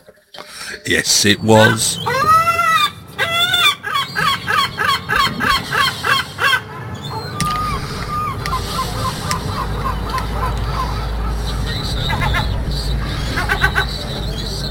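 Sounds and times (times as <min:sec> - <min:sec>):
soft outdoor hum: 0:00.4 - 0:14.6
speech: 0:00.7 - 0:02.4
seagulls calling on the Kent coast in England: 0:01.2 - 0:14.6.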